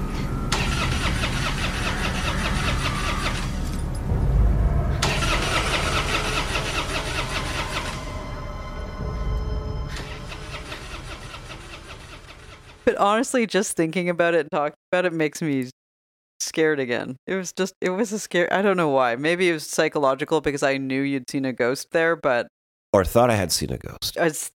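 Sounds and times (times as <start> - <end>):
car engine starting and idling with a brief rev: 0.2 - 12.8
speech: 13.0 - 15.8, 16.4 - 24.5.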